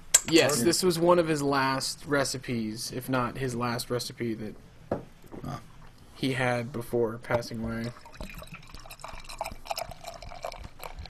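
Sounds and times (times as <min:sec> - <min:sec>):
speech: 0:00.3 - 0:08.4
saison beer pouring into a glass: 0:07.8 - 0:11.0
small drips of beer: 0:07.8 - 0:11.0.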